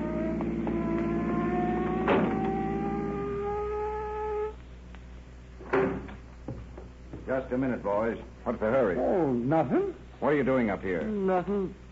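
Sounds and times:
police car engine humming and cutting off: 0.0s - 4.6s
single solid thunk: 2.0s - 2.4s
speech: 7.3s - 11.8s.

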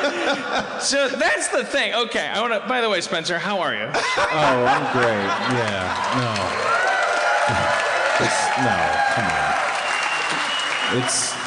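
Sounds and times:
laughter: 0.0s - 1.4s, 3.9s - 6.7s, 7.5s - 9.6s
speech: 0.3s - 6.8s, 7.5s - 9.7s, 10.3s - 11.4s
audience applause: 4.4s - 11.4s.

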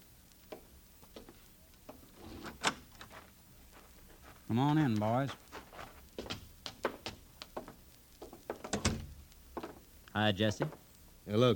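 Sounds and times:
brief scrape of a wooden door opening: 2.1s - 3.3s
speech: 4.5s - 5.4s, 10.2s - 11.5s
clicks and knocks of a wooden door being opened: 8.6s - 9.1s.

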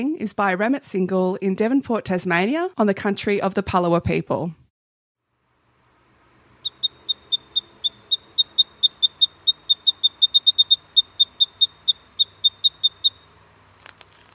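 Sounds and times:
speech: 0.0s - 4.6s
Eastern Spinebill giving high sharp tsip notes in Devonport Tasmania: 6.6s - 13.4s.

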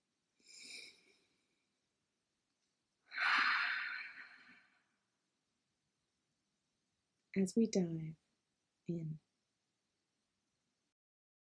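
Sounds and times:
deep breath: 3.1s - 4.9s
speech: 7.4s - 8.2s, 8.9s - 9.2s.

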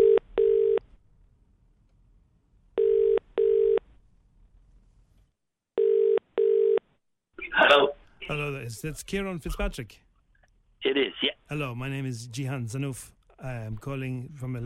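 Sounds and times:
telephone ringing in double bursts: 0.0s - 0.8s, 2.8s - 3.8s, 5.8s - 6.8s
speech: 8.3s - 10.1s, 10.8s - 14.6s.

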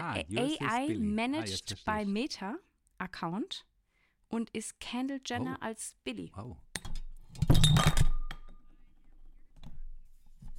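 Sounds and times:
speech: 0.2s - 3.7s, 4.3s - 6.6s
drinking glass falling over: 6.8s - 8.6s.

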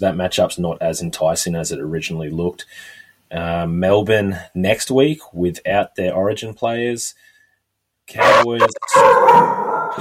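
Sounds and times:
speech: 0.0s - 7.3s, 8.1s - 9.9s
man imitating a dog barking: 8.2s - 9.9s.

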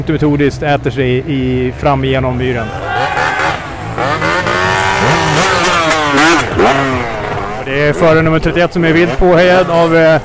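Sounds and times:
speech: 0.0s - 3.2s, 6.1s - 10.2s
enduro motorcycle engine revving through bog: 2.6s - 10.2s.

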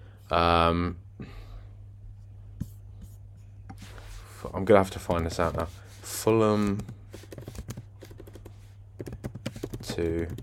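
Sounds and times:
low steady electrical hum: 0.0s - 10.4s
speech: 0.3s - 1.4s, 4.5s - 7.5s, 10.0s - 10.4s
typing on a computer keyboard: 6.8s - 10.4s.

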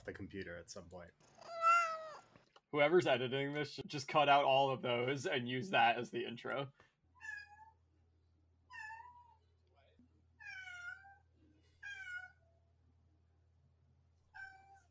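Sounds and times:
speech: 0.0s - 1.6s, 2.7s - 6.9s
cat meowing: 1.4s - 2.3s, 8.7s - 9.4s, 10.4s - 12.4s, 14.3s - 14.8s.

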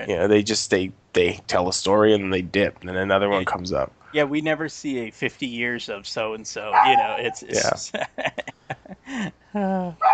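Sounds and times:
speech: 0.0s - 8.4s, 9.1s - 10.1s
female dog barking and whining: 6.7s - 7.5s, 10.0s - 10.1s
laughter: 6.9s - 9.4s.

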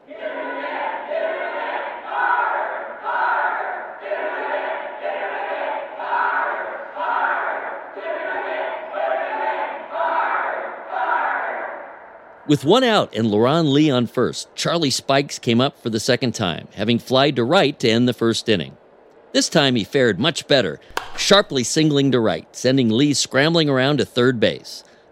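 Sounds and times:
stadium crowd chanting in unison: 0.0s - 12.2s
speech: 12.5s - 25.1s.

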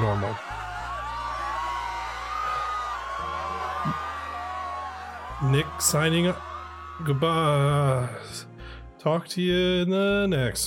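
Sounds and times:
crowd screaming and shrieking: 0.0s - 8.3s
speech: 5.4s - 10.6s.

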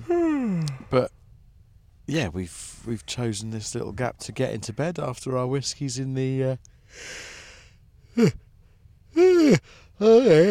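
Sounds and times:
person yawning in bed aboard an overnight sleeper train: 0.0s - 0.9s, 8.1s - 8.4s, 9.1s - 10.5s
speech: 0.0s - 1.2s, 2.1s - 7.4s, 8.2s - 8.4s, 9.2s - 10.5s.

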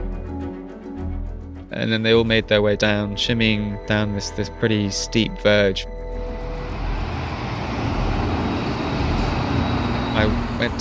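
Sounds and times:
speech: 1.8s - 5.9s, 10.2s - 10.8s
motorway traffic roar with cars passing at 70 miles an hour: 6.2s - 10.8s.

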